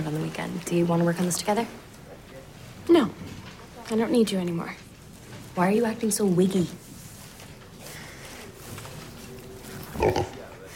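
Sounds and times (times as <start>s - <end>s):
speech: 0.1s - 1.9s, 3.9s - 4.8s, 5.6s - 6.8s
pig oinking grunt: 9.9s - 10.5s.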